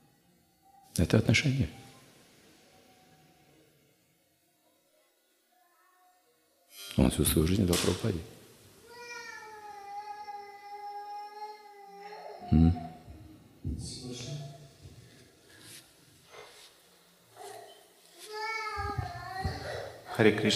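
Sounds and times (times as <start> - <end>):
room noise: 0.0 - 20.5
speech: 1.0 - 1.8, 7.0 - 8.4, 12.5 - 12.9, 20.2 - 20.5
child crying in a large hall: 8.9 - 13.1, 18.2 - 20.1.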